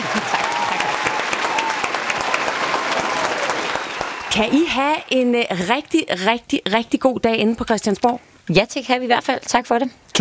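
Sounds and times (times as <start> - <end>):
studio audience clapping: 0.0 - 5.7
speech: 4.4 - 10.1.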